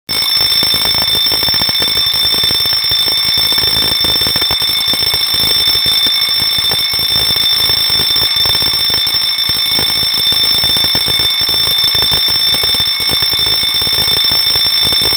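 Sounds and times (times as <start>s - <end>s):
fire bell ringing: 0.1s - 15.1s.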